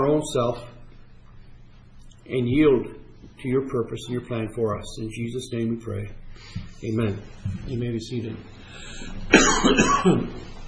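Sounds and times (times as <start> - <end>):
speech: 0.2 - 0.8, 2.3 - 10.6
person coughing from allergies: 9.3 - 10.5.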